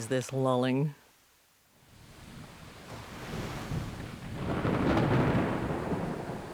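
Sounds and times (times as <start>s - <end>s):
speech: 0.0s - 1.0s
hiss of wind or surf: 1.8s - 6.5s
low thunder rumbling: 1.9s - 6.5s.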